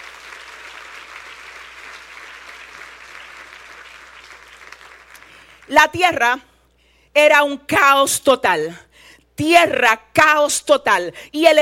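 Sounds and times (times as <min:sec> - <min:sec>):
audience applause: 0:00.0 - 0:05.7
speech: 0:05.7 - 0:06.5, 0:07.2 - 0:08.8, 0:09.4 - 0:11.6.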